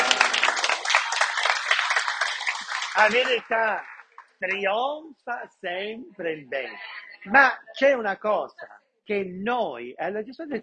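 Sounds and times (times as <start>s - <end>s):
audience applause: 0.0s - 4.7s
speech: 3.0s - 10.6s.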